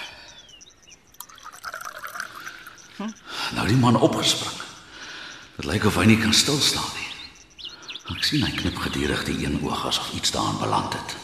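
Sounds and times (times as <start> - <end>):
liquid pouring steadily into a mug: 1.1 - 2.9
speech: 3.0 - 4.6, 5.6 - 7.1, 8.1 - 11.2.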